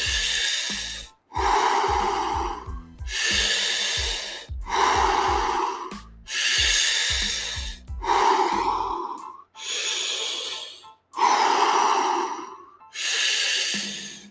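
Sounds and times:
fast rhythmic breathing exercise: 0:00.0 - 0:14.2.

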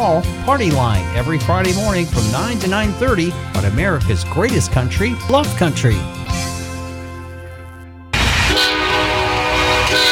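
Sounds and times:
speech: 0:00.0 - 0:06.5
train horn blowing a multi-tone chord: 0:08.2 - 0:10.1.

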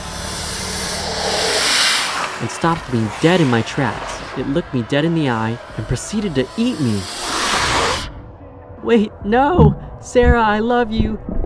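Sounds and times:
basilisk hissing: 0:00.0 - 0:08.1
speech: 0:02.4 - 0:07.2, 0:08.8 - 0:11.3.

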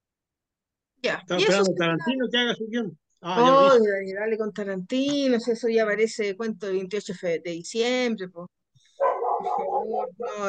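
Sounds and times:
speech: 0:01.0 - 0:08.6, 0:09.4 - 0:10.4
small dog barking: 0:09.0 - 0:10.4.

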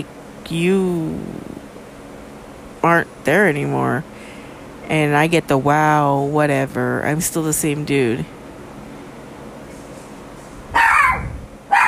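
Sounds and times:
speech: 0:00.0 - 0:01.4, 0:02.8 - 0:04.1, 0:04.9 - 0:08.4
dog barking: 0:10.7 - 0:11.8.

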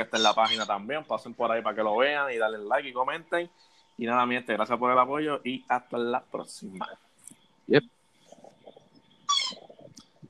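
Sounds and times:
speech: 0:00.0 - 0:07.0, 0:07.7 - 0:08.0
dog letting out a short high-pitched yelp or whine: 0:09.3 - 0:09.7.

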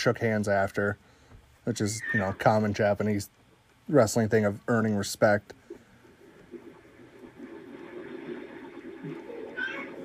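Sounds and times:
speech: 0:00.0 - 0:05.6
rumble: 0:03.5 - 0:10.0
cat meowing: 0:09.6 - 0:10.0.

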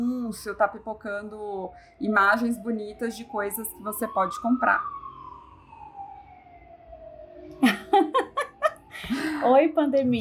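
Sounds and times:
speech: 0:00.0 - 0:05.0, 0:09.0 - 0:10.1
ambulance siren: 0:00.0 - 0:10.1
laughter: 0:07.6 - 0:09.3.

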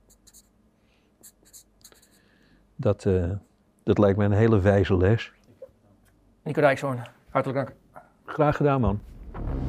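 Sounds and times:
pen scratching across paper in handwriting: 0:00.0 - 0:00.5
low hiss: 0:00.0 - 0:09.1
speech: 0:02.8 - 0:05.4, 0:06.5 - 0:07.8, 0:08.4 - 0:09.5.

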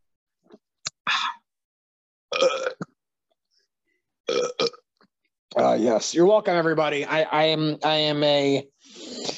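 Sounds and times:
loud guttural burps: 0:02.3 - 0:03.0, 0:04.3 - 0:04.9
speech: 0:05.8 - 0:09.0.

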